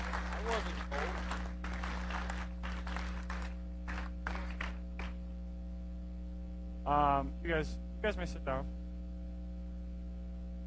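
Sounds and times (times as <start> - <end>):
small audience applause: 0.0 - 5.2
low electrical hum: 0.0 - 10.6
speech: 6.9 - 8.8.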